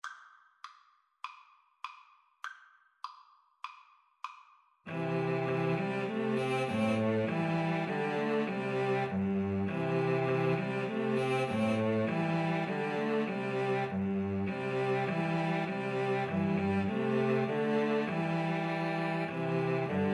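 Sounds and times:
string trio playing: 4.9 - 20.1.

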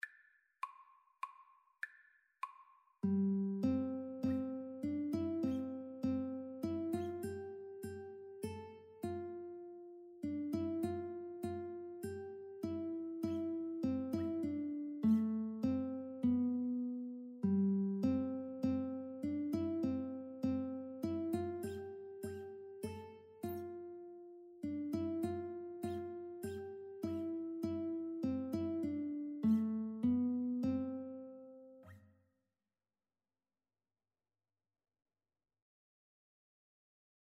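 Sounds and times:
guitar duet playing a Christmas carol: 3.0 - 32.0.

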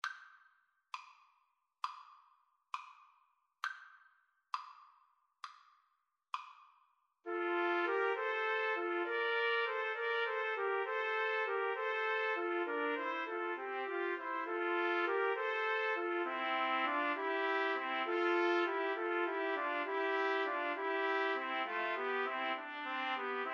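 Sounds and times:
clarinet: 7.3 - 23.5
trombone: 7.3 - 23.5
two trumpets: 7.3 - 23.5.

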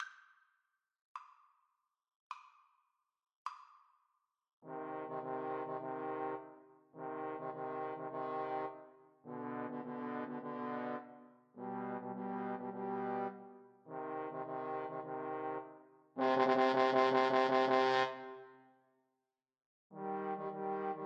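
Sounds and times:
trombone trio playing a classical movement: 4.7 - 18.1, 20.0 - 21.0.

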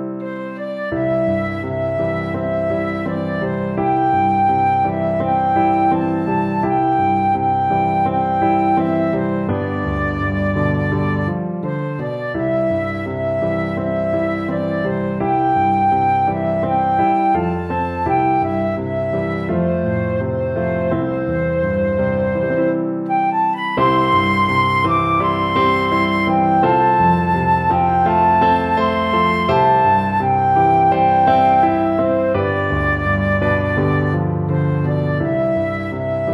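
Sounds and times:
flute tune: 0.2 - 36.3.

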